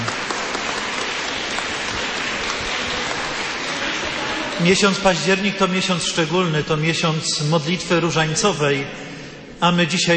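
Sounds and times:
crowd applauding: 0:00.0 - 0:05.4
speech: 0:04.6 - 0:10.1.

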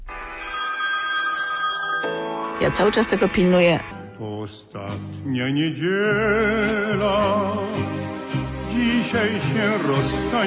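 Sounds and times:
phone ringtone playing a bright electronic campaign melody: 0:00.4 - 0:03.7
speech: 0:02.6 - 0:08.1, 0:08.8 - 0:10.4.

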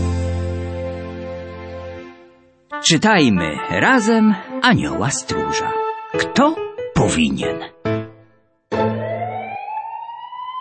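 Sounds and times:
speech: 0:02.9 - 0:07.8
ambulance siren wailing: 0:08.7 - 0:10.5.

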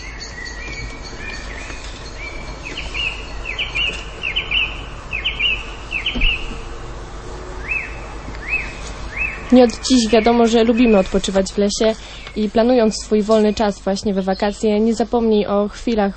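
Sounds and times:
small birds chirping and singing: 0:00.0 - 0:16.1
soft outdoor hiss: 0:00.0 - 0:16.1
speech: 0:09.5 - 0:16.1.

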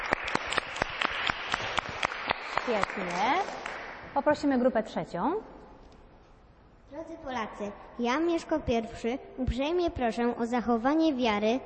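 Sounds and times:
audience applauding a group: 0:00.0 - 0:04.0
speech: 0:02.6 - 0:03.6, 0:04.2 - 0:05.5, 0:06.9 - 0:11.6.

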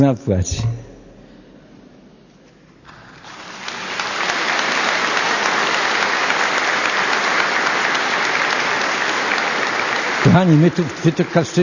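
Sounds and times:
speech: 0:00.0 - 0:00.9, 0:10.3 - 0:11.6
audience applause: 0:02.9 - 0:11.6.

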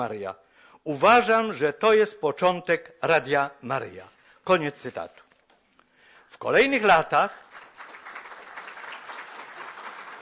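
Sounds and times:
speech: 0:00.0 - 0:05.2, 0:06.3 - 0:07.4
audience applause: 0:07.5 - 0:10.2.

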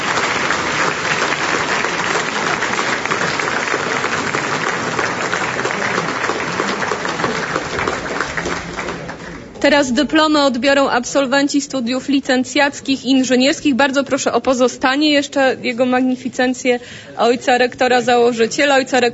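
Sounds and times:
large audience applauding graduates: 0:00.0 - 0:09.6
speech: 0:09.6 - 0:19.1.

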